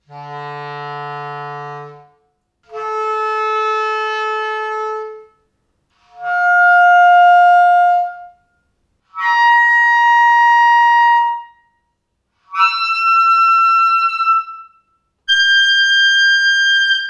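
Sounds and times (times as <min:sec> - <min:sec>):
clarinet harmonic: 0:00.0 - 0:05.4, 0:06.0 - 0:08.5, 0:09.1 - 0:11.8, 0:12.4 - 0:17.0.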